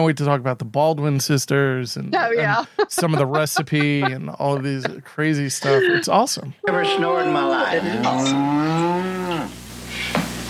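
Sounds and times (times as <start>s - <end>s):
speech: 0.0s - 9.1s
laughter: 2.2s - 8.3s
cow mooing: 7.0s - 9.6s.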